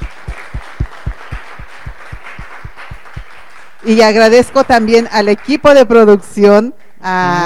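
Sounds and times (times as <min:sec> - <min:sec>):
low thumping pulse: 0:00.0 - 0:03.3
audience applauding: 0:00.0 - 0:05.7
speech: 0:03.8 - 0:07.4.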